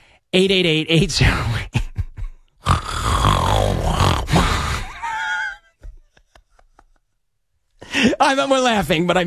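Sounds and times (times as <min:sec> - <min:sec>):
speech: 0:00.3 - 0:01.8, 0:08.3 - 0:09.2
laughter: 0:01.7 - 0:02.4, 0:04.3 - 0:07.2
loud human snoring with rattling rasping breaths: 0:02.6 - 0:04.9.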